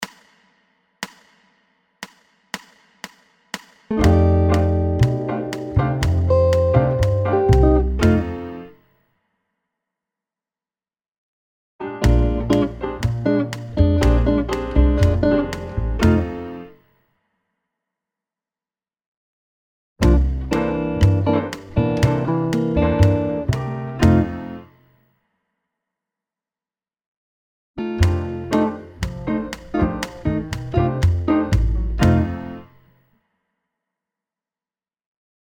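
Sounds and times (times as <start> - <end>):
Latin rhythm pulse exercise at 120 BPM: 0.0 - 8.6, 11.9 - 16.6, 20.0 - 24.6, 28.0 - 32.6.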